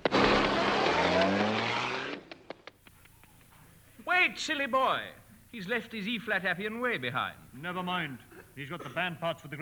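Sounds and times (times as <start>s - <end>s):
car engine revving as the car pulls away: 0.1s - 2.2s
speech: 4.3s - 9.6s.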